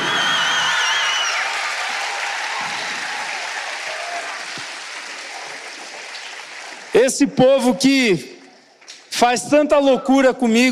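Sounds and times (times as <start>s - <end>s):
whistles and cheers: 0.0s - 4.5s
crowd clapping: 0.0s - 7.4s
speech: 7.1s - 8.3s, 9.2s - 10.6s.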